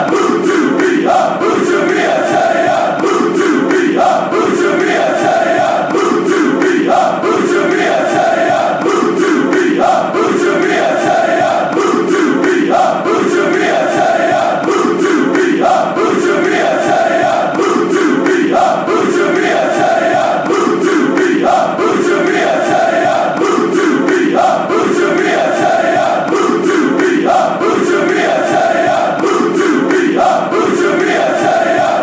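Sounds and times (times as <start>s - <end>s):
chanting: 0.0s - 32.0s.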